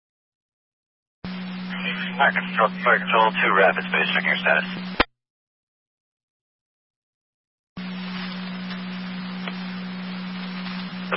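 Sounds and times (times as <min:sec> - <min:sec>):
radio dispatch alert tone: 0:01.3 - 0:05.0
radio static hiss: 0:01.3 - 0:05.1, 0:07.8 - 0:11.1
speech: 0:01.9 - 0:05.0.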